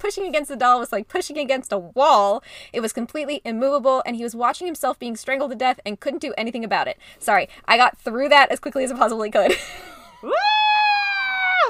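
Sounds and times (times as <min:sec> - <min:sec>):
speech: 0:00.0 - 0:10.6
long high-pitched scream into a pillow: 0:10.3 - 0:11.6.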